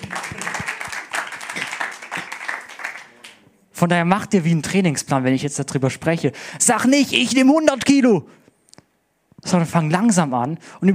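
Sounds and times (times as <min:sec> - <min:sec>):
audience applause: 0:00.0 - 0:03.4
speech: 0:03.8 - 0:08.4, 0:09.5 - 0:10.9.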